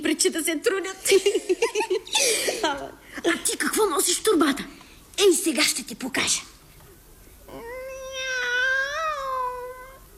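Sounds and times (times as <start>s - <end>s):
speech: 0.2s - 6.6s
cat meowing: 7.5s - 10.0s.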